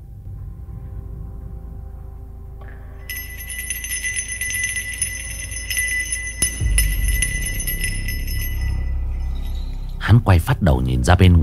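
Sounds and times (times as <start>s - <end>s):
spirit-guiding bell ringing shrilly: 3.1s - 9.7s
low rumbling: 3.1s - 10.1s
speech: 10.2s - 11.4s.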